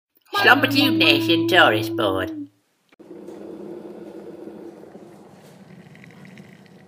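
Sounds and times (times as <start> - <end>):
speech: 0.4 - 2.5
kettle rumbling and hissing at a rolling boil: 3.0 - 6.8.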